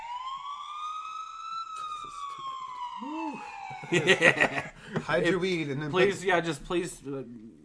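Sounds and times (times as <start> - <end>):
police siren sound effect played from a free soundboard phone app: 0.0 - 4.8
speech: 3.0 - 7.6
laughter: 3.7 - 6.2.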